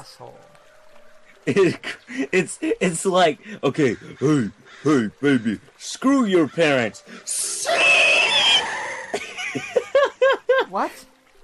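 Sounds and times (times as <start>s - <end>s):
speech: 0.1s - 0.6s, 1.4s - 8.1s, 10.6s - 11.1s
laughter: 1.4s - 2.8s, 8.3s - 10.7s
person imitating a screech: 7.3s - 9.1s.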